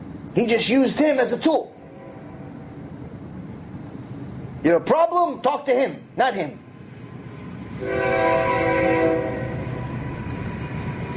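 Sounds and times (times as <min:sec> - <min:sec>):
rumble of a passing train: 0:00.0 - 0:11.1
speech: 0:00.4 - 0:01.7, 0:04.6 - 0:06.6, 0:07.8 - 0:08.5
train horn blaring: 0:01.8 - 0:02.9, 0:07.7 - 0:10.1.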